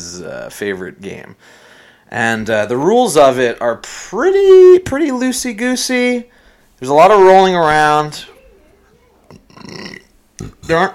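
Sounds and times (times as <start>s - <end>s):
speech: 0.2s - 8.3s, 9.6s - 10.9s
person burping into the microphone: 9.3s - 10.9s.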